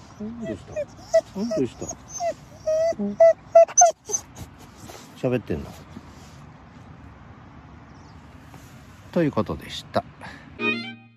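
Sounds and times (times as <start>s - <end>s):
Hokkaido dog whining on a cool morning walk along a river bank: 0.0s - 5.0s
faint outdoor noise: 0.0s - 11.1s
speech: 0.2s - 4.0s, 5.2s - 5.9s, 9.2s - 10.9s.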